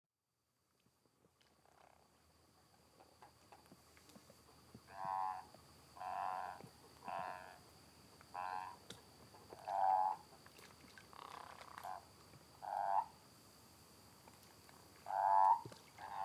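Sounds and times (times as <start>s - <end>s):
frogs and toads croaking after spring rain in Córdoba region Argentina: 4.5s - 13.6s, 14.2s - 16.2s.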